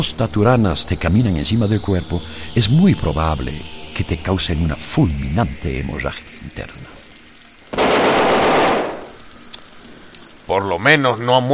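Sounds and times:
speech: 0.0 - 6.8, 10.5 - 11.5
burst of gunfire: 7.7 - 9.3.

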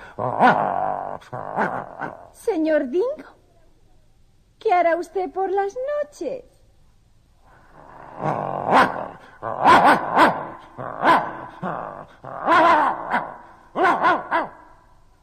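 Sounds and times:
speech: 0.2 - 3.4, 4.6 - 6.5, 9.4 - 14.5
dog barking deep and harsh with a growling edge: 8.7 - 11.7, 12.4 - 14.8.

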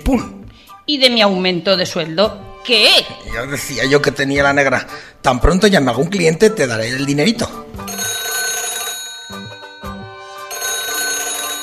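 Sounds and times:
speech: 0.0 - 8.1
telephone ringing with bright electronic trill: 7.8 - 11.6.

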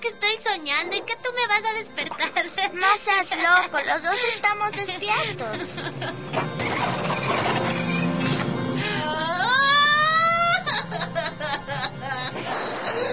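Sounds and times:
speech: 0.4 - 7.7
choppy sobbing bursts: 0.9 - 7.4, 8.8 - 13.1
laughter: 1.9 - 7.6, 8.8 - 13.1
person crying with a high wavering wail: 3.6 - 6.3, 8.8 - 13.1.

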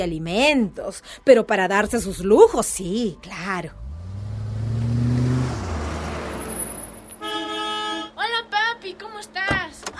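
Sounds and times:
speech: 0.0 - 3.8
car engine humming as the car pulls up: 3.4 - 9.9.

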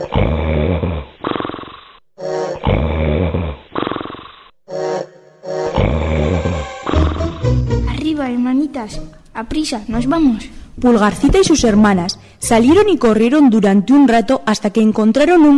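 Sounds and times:
loud rumbling snoring: 0.0 - 2.0, 2.6 - 4.5, 5.7 - 8.1
speech: 8.8 - 15.5.

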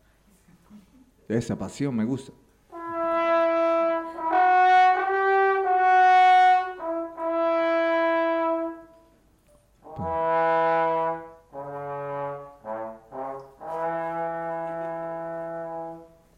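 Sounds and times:
speech: 1.3 - 2.4
trombone playing a short melodic phrase: 2.7 - 8.9, 9.8 - 16.3.

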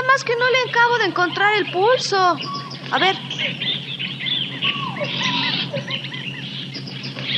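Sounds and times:
jungle birds chirping and whistling: 0.0 - 7.3
jungle insects buzzing: 0.0 - 7.3
speech: 0.2 - 4.1
monkeys squealing: 0.5 - 7.3.

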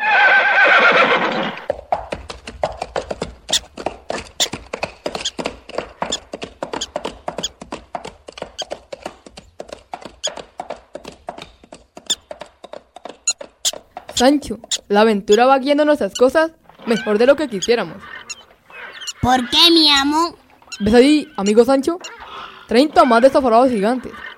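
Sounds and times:
ridden horse neighing on a trail: 0.0 - 1.7, 16.7 - 24.3
horse hooves clopping on a trail: 0.2 - 24.3
speech: 14.2 - 18.2, 19.2 - 22.1, 22.7 - 24.3.

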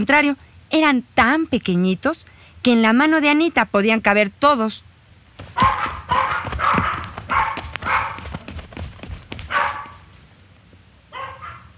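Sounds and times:
speech: 0.0 - 6.5
tiny dogs barking and yipping: 5.4 - 8.5, 9.4 - 10.1, 11.1 - 11.7.

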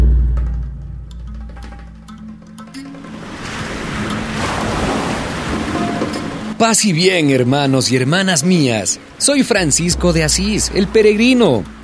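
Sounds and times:
ocean waves: 1.3 - 11.8
speech: 6.6 - 11.8
faint tones: 9.6 - 11.8.

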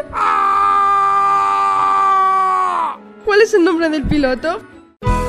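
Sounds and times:
man screaming as a hunter: 0.0 - 3.0
speech: 3.4 - 5.1.

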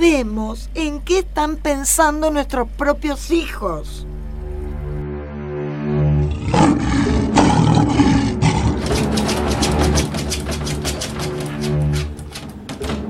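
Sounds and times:
speech: 0.2 - 4.1
lions roaring: 6.2 - 12.1
sharp rattling bursts: 8.8 - 13.0.

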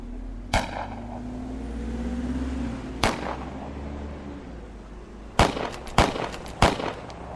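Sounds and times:
steady car engine rumble during a car chase: 0.0 - 7.3
sharp gunshots during a car chase shootout: 0.5 - 1.2, 3.0 - 3.6, 5.4 - 7.2.

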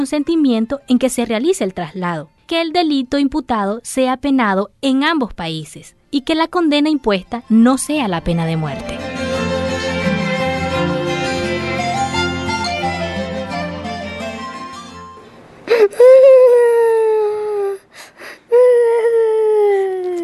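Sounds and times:
speech: 0.0 - 9.1
music: 0.0 - 15.3
child wailing and sobbing: 15.7 - 20.2.

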